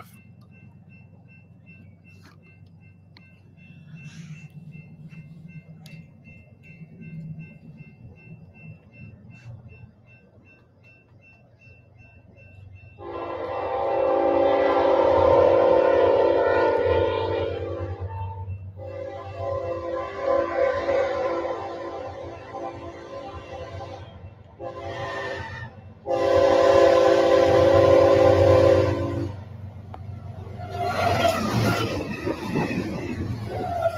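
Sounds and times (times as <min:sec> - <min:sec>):
train rumbling past: 0:00.0 - 0:33.9
train horn blasts: 0:13.0 - 0:29.4.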